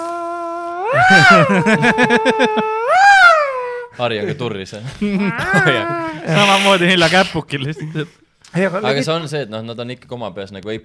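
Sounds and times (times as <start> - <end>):
person imitating an angry cat's yowl: 0.0 - 4.0, 5.2 - 6.6
speech: 0.9 - 3.2, 4.0 - 10.8
laughter: 1.1 - 2.8, 4.1 - 8.2.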